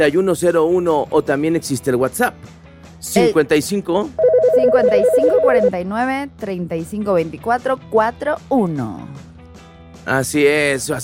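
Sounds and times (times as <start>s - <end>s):
speech: 0.0s - 9.2s, 10.1s - 11.0s
electronic telephone ringing with an incoming call: 4.2s - 5.8s.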